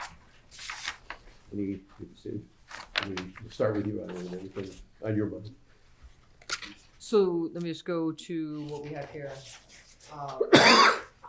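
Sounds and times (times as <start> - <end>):
speech: 1.5 - 5.6, 7.0 - 11.0
person coughing: 10.4 - 11.2.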